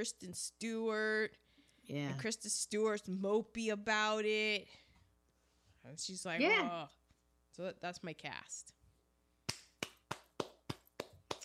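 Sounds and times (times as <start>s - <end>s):
speech: 0.0s - 4.8s, 5.8s - 7.0s, 7.6s - 8.8s
hand claps from a single person: 9.5s - 11.4s.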